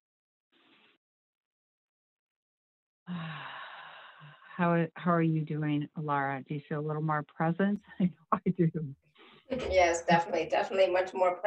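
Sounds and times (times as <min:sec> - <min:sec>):
deep breathing during a spoken affirmation session: 0:03.1 - 0:04.6, 0:09.2 - 0:09.5
speech: 0:04.6 - 0:11.4.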